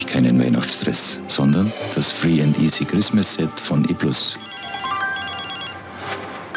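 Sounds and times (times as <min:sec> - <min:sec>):
noise: 0:00.0 - 0:06.5
speech: 0:00.4 - 0:04.5
electronic telephone ringtone for an incoming call: 0:04.3 - 0:06.0.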